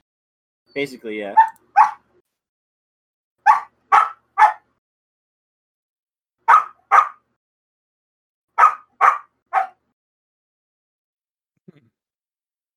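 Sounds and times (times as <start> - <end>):
speech: 0.7 - 1.6
small dog barking: 1.4 - 2.0, 3.4 - 4.6, 6.4 - 7.2, 8.6 - 9.8.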